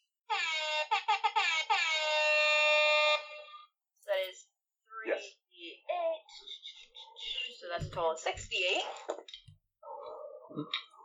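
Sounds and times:
loud air horn blasts and honks: 0.3s - 3.7s
speech: 8.0s - 9.4s, 10.5s - 10.8s.

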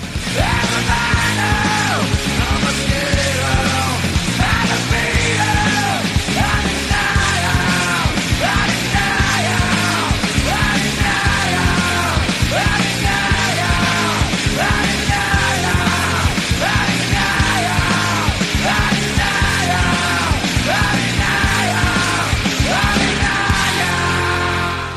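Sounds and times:
grunge rock song with distorted guitars and pounding drums: 0.0s - 24.9s
raw voice yelling and screaming vocals: 0.3s - 24.9s.

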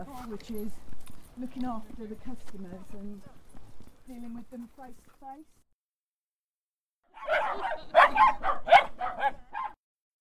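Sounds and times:
speech: 0.0s - 3.4s, 4.1s - 5.6s, 7.2s - 9.6s
dog barking: 7.1s - 9.8s.

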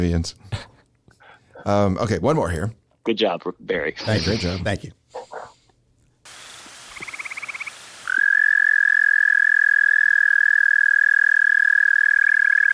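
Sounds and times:
speech: 0.0s - 0.7s, 1.6s - 5.0s
Eastern American toad trilling call: 7.0s - 12.7s.

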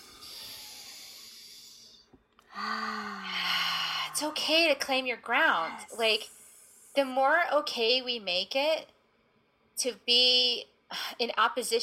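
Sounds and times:
deep belly breath with a faint voiced hum: 0.0s - 4.2s
speech: 2.6s - 3.0s, 4.2s - 6.4s, 7.0s - 9.0s, 9.8s - 11.8s.

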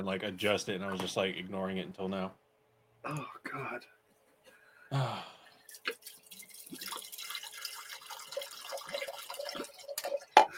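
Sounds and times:
speech: 0.0s - 2.4s, 3.0s - 4.0s, 4.9s - 6.0s
breathy sound: 4.5s - 5.7s
liquid pouring into a glass: 5.6s - 10.5s.

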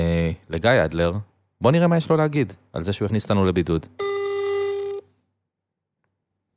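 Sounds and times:
speech: 0.0s - 4.5s
electronic telephone ringback tone: 4.0s - 5.1s.

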